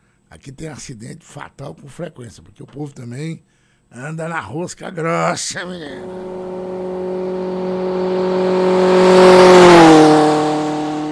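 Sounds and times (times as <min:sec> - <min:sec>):
speech: 0:00.3 - 0:07.5
car speeding past on a highway: 0:05.8 - 0:11.0.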